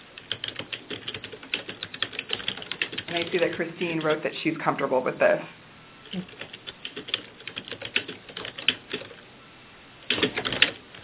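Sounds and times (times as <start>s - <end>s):
typing on a computer keyboard: 0.1s - 4.2s, 6.1s - 9.2s, 10.1s - 11.0s
speech: 3.1s - 6.4s.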